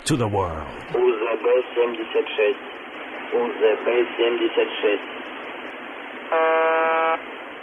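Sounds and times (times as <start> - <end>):
speech: 0.1 - 5.2, 6.3 - 7.3
faint static hiss: 0.5 - 7.6
shortwave radio station buzzer tone on 4625 kHz: 6.3 - 7.2.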